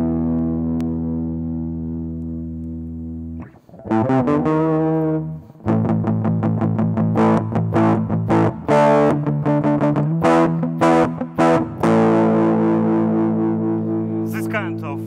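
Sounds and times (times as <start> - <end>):
overdriven electric guitar chords with shifting tone: 0.0 - 15.0.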